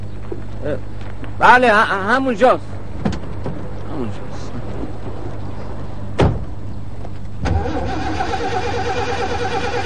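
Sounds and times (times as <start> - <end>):
speech: 0.6 - 2.7, 4.0 - 4.5
temperamental car engine cranked with its starter: 7.4 - 9.8.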